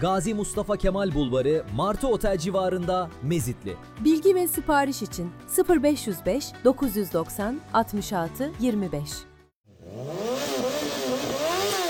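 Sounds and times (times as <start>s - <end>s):
speech: 0.0s - 9.3s
motorcycle engine revving hard: 9.6s - 11.8s.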